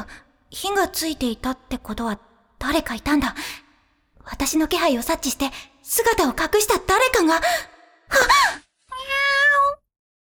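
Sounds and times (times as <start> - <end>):
speech: 0.0 - 3.6, 4.2 - 8.6
cat meowing: 8.9 - 9.8.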